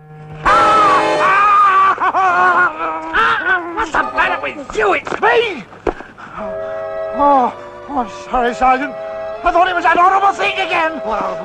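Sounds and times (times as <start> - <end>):
man screaming in fright: 0.4 - 4.4
laughter: 0.5 - 5.5
speech: 4.5 - 5.8, 7.2 - 11.4.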